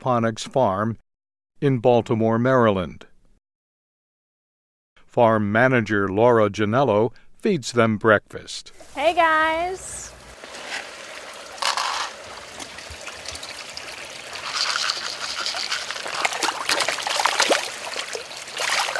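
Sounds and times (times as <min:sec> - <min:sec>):
speech: 0:00.0 - 0:01.0, 0:01.6 - 0:03.1, 0:05.2 - 0:10.1
water flowing and trickling in an aquaponics fish tank: 0:10.1 - 0:18.9.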